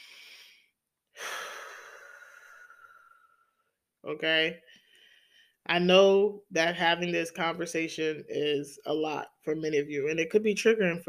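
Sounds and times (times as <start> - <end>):
slow deep breath in and out: 0.0 - 3.7
speech: 4.0 - 4.8, 5.7 - 11.0.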